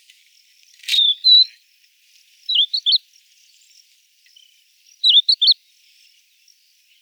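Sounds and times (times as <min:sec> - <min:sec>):
crested lark Galerida cristata calls: 0:00.8 - 0:01.6, 0:02.4 - 0:05.6.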